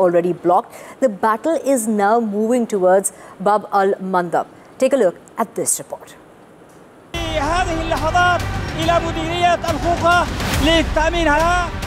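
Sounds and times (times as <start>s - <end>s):
speech: 0.0s - 6.2s, 7.3s - 11.8s
crowd of fighters chanting and shouting in celebration: 7.2s - 11.8s.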